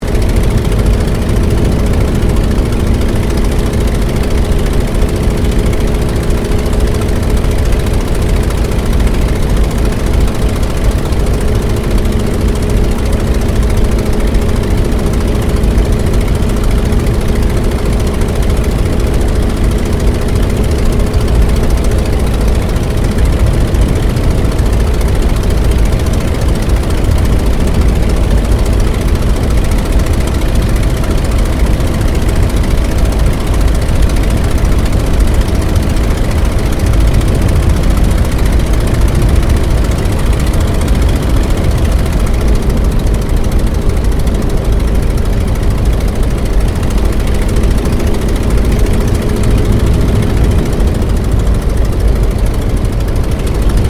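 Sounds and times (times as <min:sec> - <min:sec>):
Ryan PT-22 aircraft flying heard from interior: 0:00.0 - 0:53.8.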